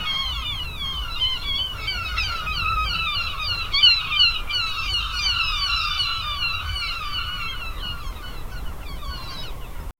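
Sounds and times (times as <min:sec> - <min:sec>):
soft gentle seagull call: 0:00.0 - 0:09.9.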